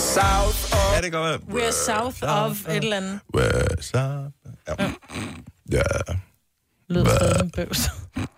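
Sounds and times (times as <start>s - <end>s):
speech: 0.2s - 6.2s, 6.9s - 8.3s
loud burp: 3.3s - 6.2s, 7.0s - 8.3s.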